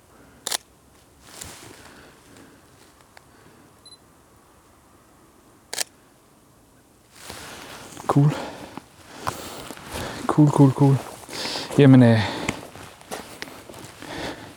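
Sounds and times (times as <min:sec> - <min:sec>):
camera shutter clicking while taking photos in Southern Jutland: 0:00.4 - 0:00.7, 0:05.7 - 0:05.9
speech: 0:08.2 - 0:08.5, 0:10.4 - 0:11.1, 0:11.8 - 0:12.4.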